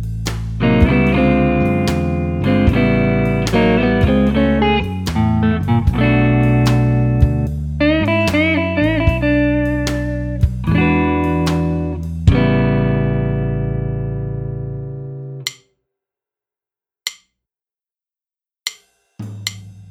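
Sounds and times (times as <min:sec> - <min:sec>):
music build-up: 0:00.2 - 0:15.5.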